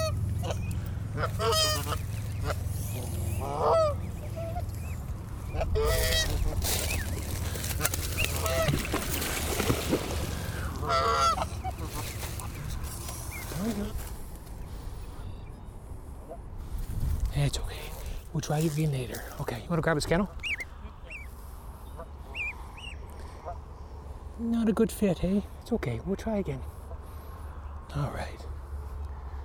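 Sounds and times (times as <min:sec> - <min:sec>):
adult geese honking as they charge: 0:00.0 - 0:16.6, 0:17.9 - 0:24.3
steady low rumble: 0:00.0 - 0:24.4
speech: 0:18.5 - 0:20.4, 0:24.8 - 0:26.8.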